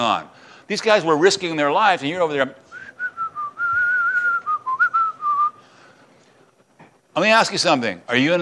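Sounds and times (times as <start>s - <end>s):
speech: 0.0s - 2.6s, 7.2s - 8.4s
person whistling a wavering tune: 2.7s - 5.6s.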